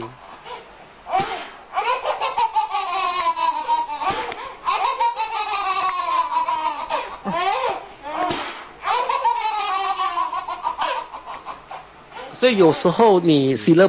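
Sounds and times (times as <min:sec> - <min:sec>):
baby giggling: 0:01.8 - 0:12.4
speech: 0:12.4 - 0:13.8.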